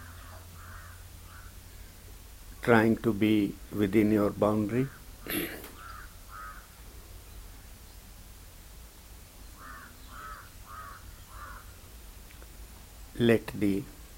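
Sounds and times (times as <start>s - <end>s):
crow cawing: 0.0s - 1.6s, 4.8s - 6.8s, 9.6s - 11.8s
soft hiss: 0.0s - 14.1s
speech: 2.6s - 5.6s, 13.2s - 14.0s.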